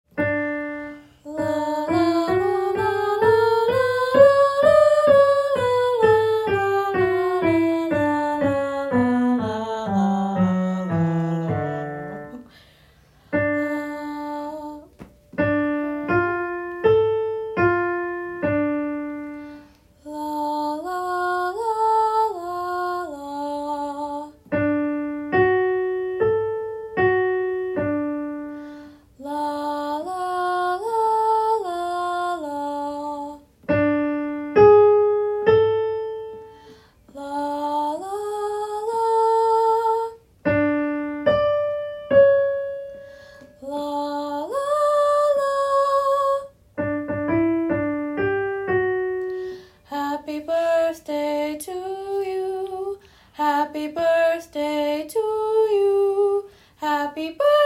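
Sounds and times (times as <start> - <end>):
soprano singing: 0.2 - 57.6.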